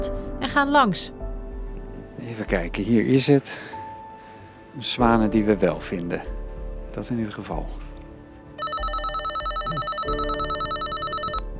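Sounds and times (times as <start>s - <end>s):
speech: 0.0s - 1.2s, 2.2s - 3.8s, 4.8s - 7.8s, 9.7s - 10.4s
electric doorbell ringing: 8.6s - 11.5s.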